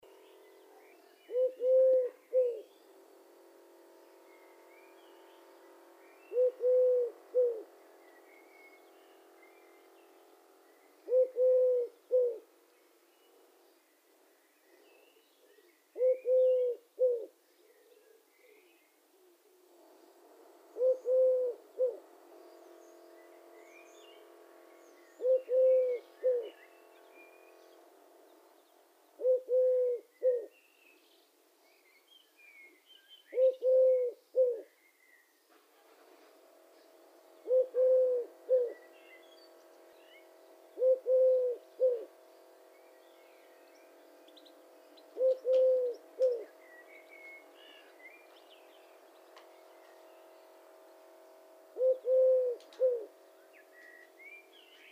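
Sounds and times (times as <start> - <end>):
Eurasian Collared Dove Streptopelia decaocto: 0.0 - 2.7, 6.3 - 7.8, 11.0 - 12.5, 14.7 - 20.0, 20.7 - 22.8, 25.1 - 26.8, 29.1 - 30.6, 32.6 - 34.8, 35.5 - 38.9, 39.7 - 42.2, 43.9 - 48.4, 51.8 - 54.9.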